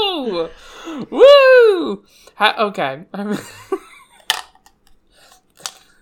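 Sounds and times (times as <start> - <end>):
speech: 0.4 - 3.8
dice spilling out of an opened drawer and clattering: 4.3 - 4.9, 5.5 - 5.9.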